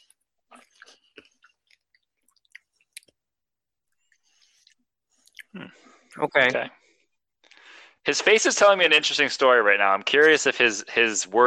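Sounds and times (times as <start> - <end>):
chewing with mouth closed: 0.0 - 3.2, 4.1 - 6.2
speech: 5.6 - 6.8, 8.0 - 11.4.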